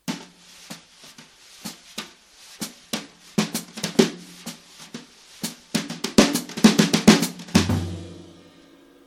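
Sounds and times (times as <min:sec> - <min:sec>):
classic drums played with brushes: 0:00.0 - 0:09.0.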